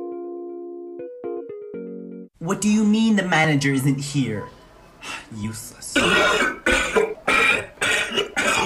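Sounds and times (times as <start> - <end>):
speech: 2.4 - 7.0
person coughing: 5.9 - 8.6.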